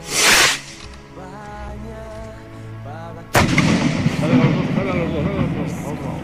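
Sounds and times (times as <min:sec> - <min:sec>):
festival rocket blasts calling to mass: 0:00.0 - 0:00.8, 0:03.4 - 0:05.7.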